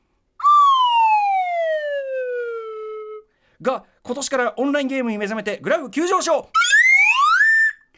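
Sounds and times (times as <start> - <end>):
wave-whistle device tone gliding downward in pitch: 0.4 - 3.2, 6.6 - 7.9
speech: 3.6 - 6.7.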